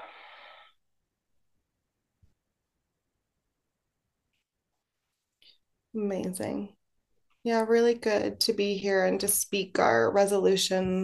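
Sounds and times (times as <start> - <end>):
slow exhale during breathing exercise: 0.0 - 0.8
speech: 6.0 - 6.8, 7.4 - 11.0.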